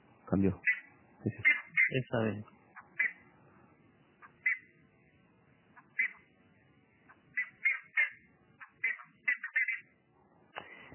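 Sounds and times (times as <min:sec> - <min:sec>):
speech: 0:00.3 - 0:02.6
plumbeous ibis loud sharp high calls: 0:00.6 - 0:02.1, 0:02.7 - 0:03.3, 0:04.2 - 0:04.8, 0:05.8 - 0:06.3, 0:07.3 - 0:10.0.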